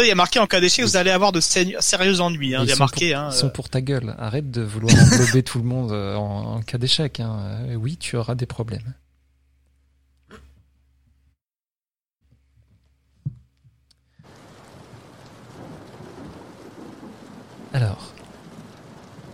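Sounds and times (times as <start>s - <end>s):
speech: 0.0s - 9.0s
laughter: 2.3s - 3.5s, 4.9s - 5.4s
steady rain pouring onto a paved car park at night: 14.2s - 19.3s.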